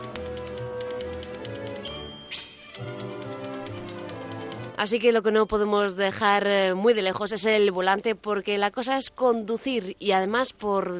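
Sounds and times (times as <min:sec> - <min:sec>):
typewriter keys clacking: 0:00.0 - 0:05.0
speech: 0:04.8 - 0:10.9.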